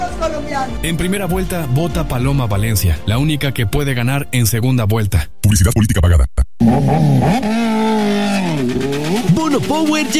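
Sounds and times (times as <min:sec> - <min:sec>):
speech: 0:00.2 - 0:10.1
motorcycle engine revving: 0:06.6 - 0:10.1.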